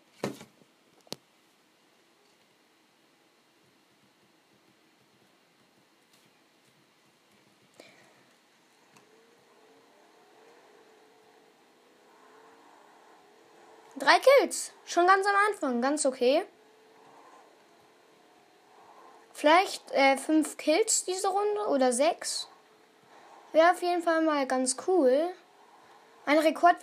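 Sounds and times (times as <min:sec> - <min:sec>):
video game car engine revving: 0:07.8 - 0:26.8
speech: 0:14.0 - 0:16.5, 0:19.4 - 0:22.5, 0:23.5 - 0:25.4, 0:26.3 - 0:26.8.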